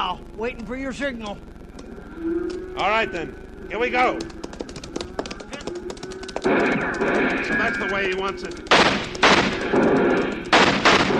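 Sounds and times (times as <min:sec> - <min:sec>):
speech: 0:00.2 - 0:01.6, 0:02.2 - 0:04.4, 0:06.4 - 0:10.5
gunfire in a western shootout among riders on horseback: 0:06.4 - 0:11.1.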